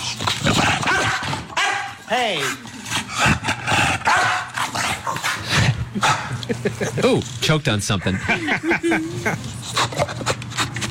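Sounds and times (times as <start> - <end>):
animal barking: 0.4 - 2.6, 3.2 - 6.3
speech: 2.1 - 2.8, 6.0 - 10.3
laughter: 5.9 - 7.3, 8.0 - 9.7.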